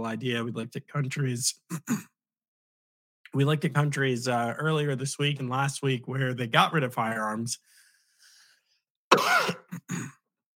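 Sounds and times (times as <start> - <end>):
speech: 0.0 - 2.1, 3.3 - 7.8
person clearing throat: 1.7 - 2.1, 9.1 - 10.2
person coughing: 9.1 - 10.2.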